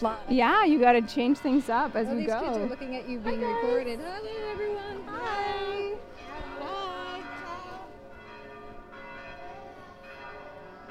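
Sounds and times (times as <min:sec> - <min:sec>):
speech: 0:00.0 - 0:05.7
church bells in Rome pealing at noon: 0:00.0 - 0:10.8
faint crowd murmur: 0:00.0 - 0:10.8.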